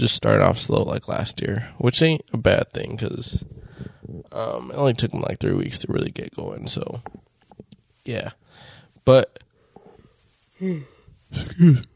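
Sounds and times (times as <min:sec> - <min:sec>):
speech: 0:00.0 - 0:07.2, 0:08.0 - 0:09.4, 0:10.6 - 0:11.9
person yawning: 0:10.6 - 0:11.0.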